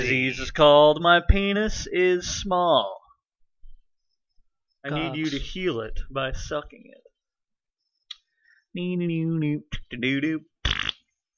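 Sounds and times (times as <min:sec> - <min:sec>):
speech: 0:00.0 - 0:03.0, 0:04.8 - 0:07.0, 0:08.7 - 0:10.5
voice imitating a loud fart: 0:10.6 - 0:11.0.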